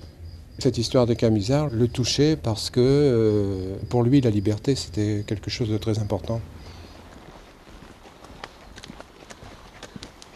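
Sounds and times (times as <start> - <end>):
low outdoor rumble: 0.0 - 10.3
speech: 0.6 - 6.6
donkeys' hooves clip-clopping at a walking pace: 6.6 - 10.3.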